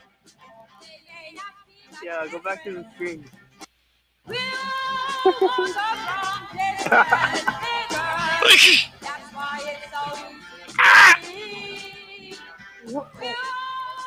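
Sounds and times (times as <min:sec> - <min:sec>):
speech: 0:01.4 - 0:03.4, 0:04.3 - 0:07.8, 0:08.4 - 0:11.9, 0:12.9 - 0:13.6
laughter: 0:05.1 - 0:05.8, 0:06.7 - 0:08.8
woman's avant-garde vocalizing with cawing cries and chortling: 0:05.1 - 0:05.8, 0:08.2 - 0:08.9
woman's harsh raspy screams: 0:08.3 - 0:08.9, 0:10.8 - 0:11.2.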